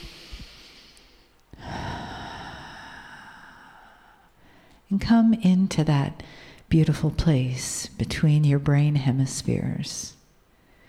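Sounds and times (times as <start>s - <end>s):
deep breath in during a guided meditation: 0.0s - 4.9s, 6.3s - 6.6s
speech: 4.9s - 10.2s.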